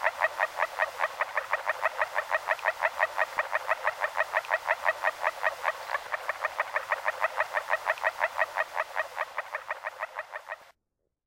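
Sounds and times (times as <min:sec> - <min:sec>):
agile frog Rana dalmatina croaking: 0:00.0 - 0:10.7.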